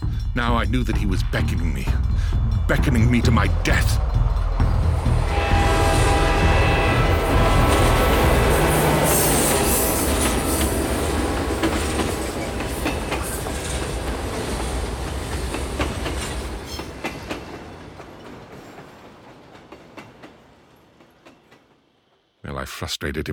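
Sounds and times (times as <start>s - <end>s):
approaching train rumbling and clattering: 0.0s - 22.4s
speech: 0.4s - 4.3s, 22.8s - 23.3s
train whistle: 5.2s - 10.8s.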